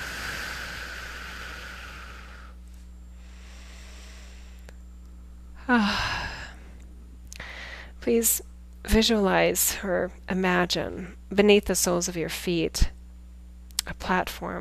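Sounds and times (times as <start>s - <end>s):
rushing exhale: 0.0s - 2.6s, 3.2s - 4.7s
slow deep breath in: 0.0s - 2.6s, 3.2s - 4.7s, 7.4s - 7.9s
steady low hum: 0.0s - 14.5s
speech: 5.7s - 6.1s, 8.1s - 13.0s, 13.8s - 14.5s.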